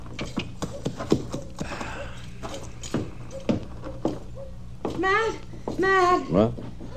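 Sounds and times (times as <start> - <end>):
horse hooves clip-clopping as horse is led to a livery stable: 0.0 - 6.9
speech: 5.0 - 6.6.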